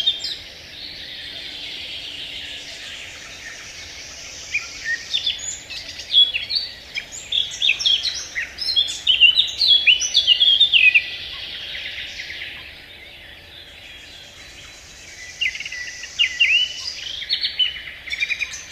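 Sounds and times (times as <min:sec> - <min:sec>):
Eurasian blackcap singing a varied warble played on the radio: 0:00.0 - 0:18.6.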